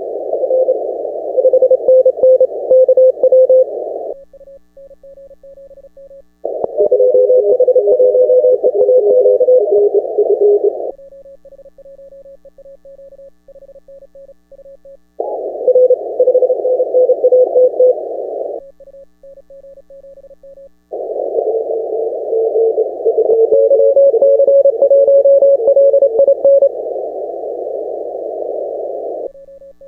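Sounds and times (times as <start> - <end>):
CW Morse code on 10 metre amateur radio: 0.6 - 3.7, 6.5 - 10.9, 15.3 - 18.0, 21.5 - 26.8.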